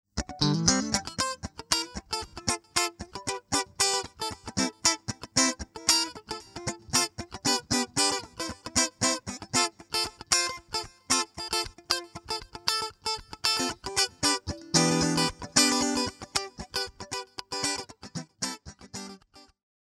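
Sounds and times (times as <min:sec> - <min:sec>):
funk rhythm: 0:00.2 - 0:19.2.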